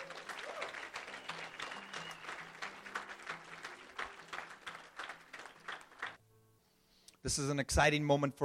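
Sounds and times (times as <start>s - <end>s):
audience clapping: 0.0s - 6.2s
speech: 7.2s - 8.4s.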